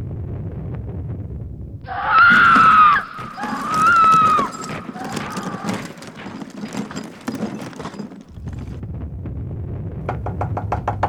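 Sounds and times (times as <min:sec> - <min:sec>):
woman screaming in a room next door: 0:01.9 - 0:06.0
sharp knocks and thumps against a door: 0:10.0 - 0:11.0.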